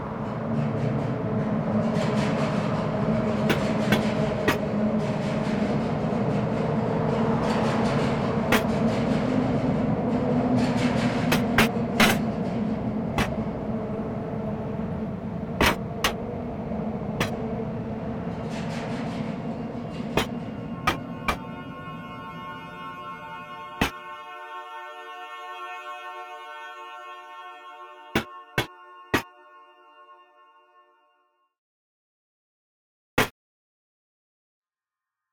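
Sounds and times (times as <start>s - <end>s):
train wheels clacking over rails: 0.0s - 22.0s
train rumbling past: 0.0s - 31.0s
low sustained whistle-like tone: 0.0s - 31.4s.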